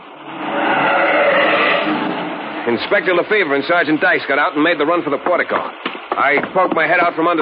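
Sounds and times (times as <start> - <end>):
car roaring off at speed in the rain: 0.0 - 3.5
speech: 2.7 - 7.4.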